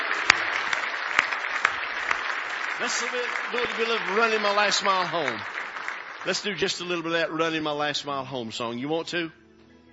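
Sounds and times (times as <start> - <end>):
sharp claps: 0.0 - 7.2
gospel church congregation clapping: 0.0 - 8.2
speech: 2.8 - 5.6, 6.2 - 9.4.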